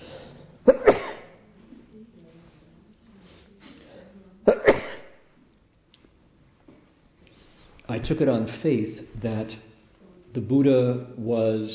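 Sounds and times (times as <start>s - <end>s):
faint low murmur: 0.0s - 11.7s
sneezing: 0.6s - 1.4s, 3.8s - 5.2s
speech: 0.7s - 1.0s, 8.0s - 9.7s, 10.3s - 11.7s.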